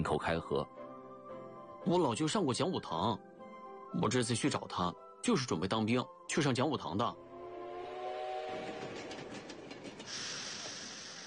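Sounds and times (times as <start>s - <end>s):
speech: 0.0s - 0.8s, 1.8s - 3.3s, 3.9s - 7.2s
train rolling by on the rails: 7.0s - 11.2s
brief tonal whine: 7.2s - 10.0s
rhythmic clacking of train wheels over track joints: 7.6s - 11.0s
hissing rush: 7.9s - 11.2s.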